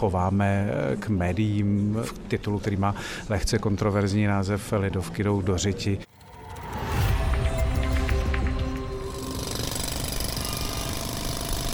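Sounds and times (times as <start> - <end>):
speech: 0.0 - 6.1
heavy milling machines grinding and stripping asphalt: 6.1 - 11.7
jackhammer pounding on racing circuit asphalt: 6.1 - 11.7.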